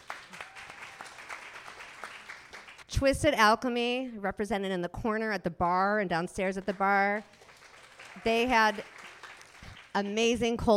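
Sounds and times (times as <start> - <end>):
audience applause at a sponsored evening event with a bar: 0.0 - 2.8, 7.2 - 10.0
speech: 3.0 - 7.4, 8.2 - 8.9, 10.0 - 10.7.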